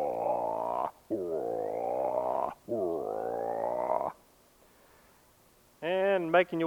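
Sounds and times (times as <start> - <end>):
frogs croaking: 0.0 - 4.2
speech: 6.4 - 6.6.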